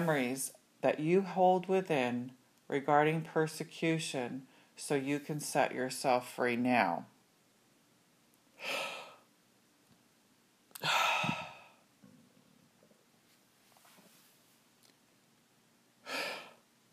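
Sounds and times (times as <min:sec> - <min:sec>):
speech: 0:00.0 - 0:07.1, 0:08.6 - 0:08.9
person yawning: 0:10.8 - 0:11.8.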